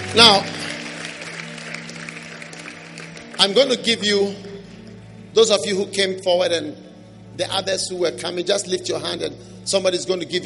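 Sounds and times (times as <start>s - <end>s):
congregation applauding at a church service: 0.0s - 5.0s
speech: 0.1s - 0.6s, 3.4s - 4.5s, 5.3s - 6.8s, 7.4s - 10.4s.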